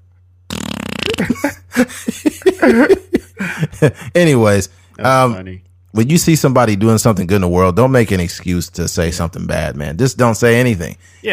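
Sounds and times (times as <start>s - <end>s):
voice imitating a slow queef with raspberry and wobbling vocal bursts: 0.5s - 1.4s
laughter: 1.2s - 4.2s
speech: 1.2s - 11.3s.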